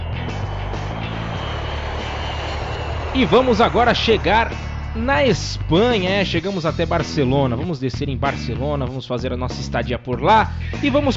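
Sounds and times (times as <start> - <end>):
airplane engine roar: 0.0 - 7.6
speech: 3.2 - 11.1.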